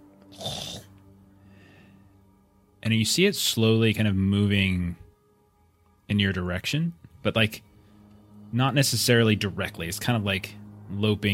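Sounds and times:
voice imitating a wolf-like beast sniffing: 0:00.3 - 0:00.9
speech: 0:02.8 - 0:05.0, 0:06.1 - 0:07.7, 0:08.5 - 0:11.3.

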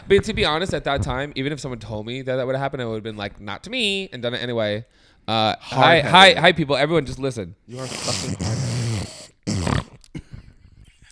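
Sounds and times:
speech: 0:00.1 - 0:08.6
person imitating snoring with rasping nasal snorts: 0:07.7 - 0:10.1.

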